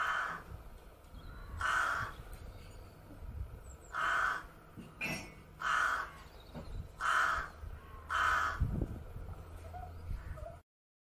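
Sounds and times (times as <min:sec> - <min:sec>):
rook cawing: 0:00.0 - 0:00.5, 0:01.3 - 0:02.2, 0:03.9 - 0:04.7, 0:05.6 - 0:06.4, 0:07.0 - 0:08.7
low outdoor background: 0:00.0 - 0:10.6.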